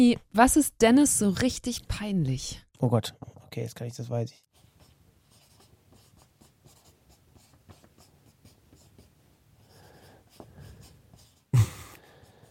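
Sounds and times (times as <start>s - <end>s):
speech: 0.0s - 4.5s
pen scratching across paper writing lines: 4.6s - 11.5s.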